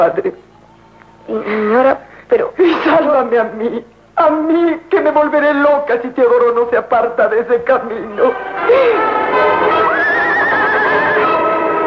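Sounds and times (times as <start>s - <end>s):
speech: 0.0s - 0.5s, 1.3s - 10.1s
pony whinnying: 9.8s - 11.4s.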